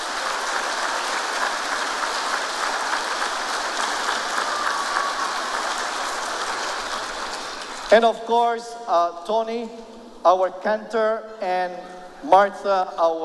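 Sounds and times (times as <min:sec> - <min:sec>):
crowd applauding: 0:00.0 - 0:08.0
speech: 0:07.9 - 0:13.2.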